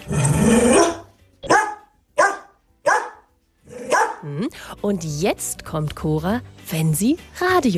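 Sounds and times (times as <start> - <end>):
dog barking: 0.7 - 4.2
speech: 4.2 - 7.7.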